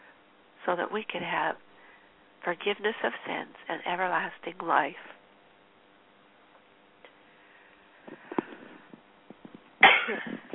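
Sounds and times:
speech: 0.7s - 1.7s, 2.4s - 5.2s
shuffling noises: 8.0s - 9.7s
loud sneeze: 9.8s - 10.5s.

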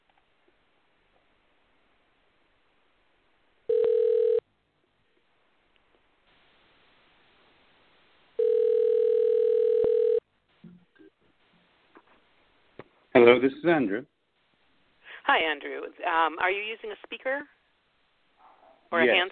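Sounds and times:
telephone dial tone while placing a call: 3.7s - 4.4s, 8.4s - 10.2s
speech: 13.2s - 14.1s, 15.3s - 17.6s, 18.9s - 19.2s.

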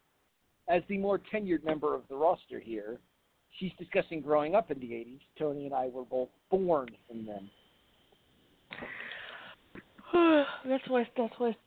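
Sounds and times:
speech: 0.7s - 7.6s, 10.1s - 11.6s
person yawning: 10.0s - 10.7s.

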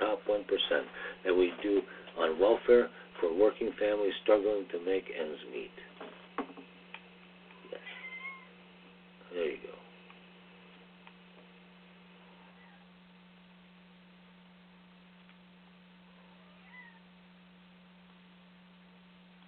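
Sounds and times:
steady electrical hum: 0.0s - 19.4s
speech: 0.4s - 5.9s
cat meowing: 7.8s - 8.6s, 12.3s - 12.9s, 16.2s - 17.1s.

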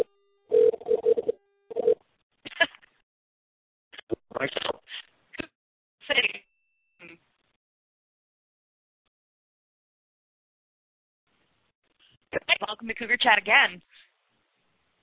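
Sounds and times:
short electronic telephone dialing tones: 0.0s - 2.0s
speech: 12.6s - 14.0s.

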